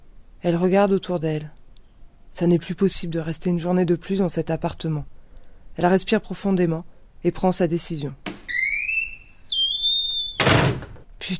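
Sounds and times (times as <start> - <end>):
speech: 0.4 - 1.6, 2.4 - 5.1, 5.8 - 8.3
building door creaking open with high-pitched hinge squeal: 8.3 - 11.0.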